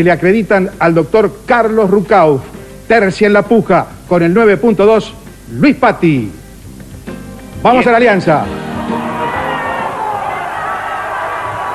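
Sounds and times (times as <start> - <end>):
speech: 0.0 - 6.4, 7.6 - 8.7
crowd of supporters cheering and shouting at election results: 8.5 - 11.7.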